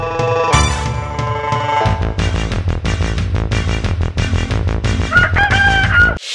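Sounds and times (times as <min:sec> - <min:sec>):
loud rhythmic music: 0:00.0 - 0:05.8
rooster crowing: 0:05.1 - 0:06.2.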